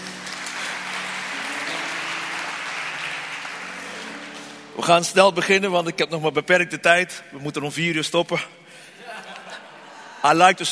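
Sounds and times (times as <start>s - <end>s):
audience applause: 0.0s - 4.8s
speech: 4.8s - 8.6s, 10.2s - 10.6s
laughter: 8.9s - 10.5s.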